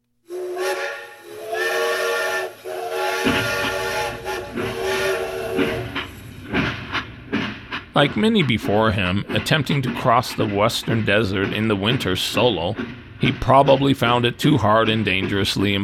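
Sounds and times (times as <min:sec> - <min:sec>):
steam train whistle blasts: 0:00.2 - 0:06.2
hiss of escaping steam: 0:00.3 - 0:14.1
speech: 0:08.0 - 0:15.8.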